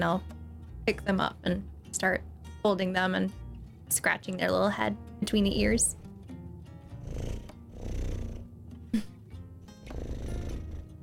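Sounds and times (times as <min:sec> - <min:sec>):
speech: 0:00.0 - 0:06.0
person imitating a cat purring: 0:06.9 - 0:09.1, 0:09.8 - 0:11.0.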